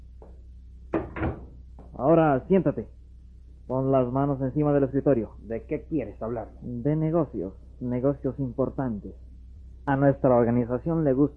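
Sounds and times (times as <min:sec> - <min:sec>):
low hum: 0:00.0 - 0:11.3
door opening with wooden clunks: 0:01.0 - 0:01.6
speech: 0:02.0 - 0:03.0, 0:03.7 - 0:11.3.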